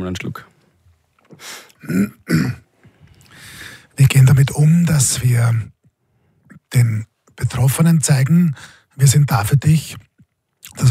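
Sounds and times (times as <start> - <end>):
speech: 0.0 - 0.5, 1.3 - 2.6, 4.0 - 5.7, 6.7 - 10.0, 10.6 - 10.8
person clearing throat in rough gravelly bursts: 1.8 - 2.7.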